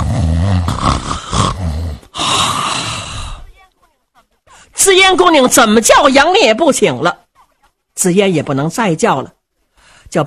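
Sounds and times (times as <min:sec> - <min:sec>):
voice imitating the loud snoring of a drunk man: 0:00.0 - 0:03.4
speech: 0:04.9 - 0:07.2, 0:08.0 - 0:09.4.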